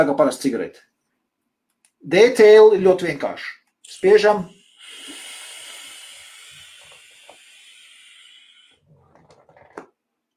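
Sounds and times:
speech: 0:00.0 - 0:00.9, 0:02.0 - 0:04.6
airy hiss with faint crackling of a direct-to-lung vape inhale: 0:03.9 - 0:08.9.

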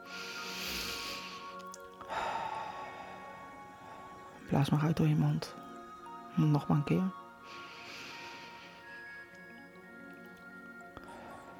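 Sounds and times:
long steady breath drawn in through the nose during a guided breathing exercise: 0:00.0 - 0:03.4, 0:07.4 - 0:09.2
speech: 0:04.5 - 0:05.6, 0:06.4 - 0:07.6.

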